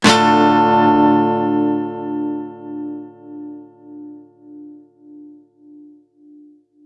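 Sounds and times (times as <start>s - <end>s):
guitar one-shots in D minor: 0.0s - 4.8s.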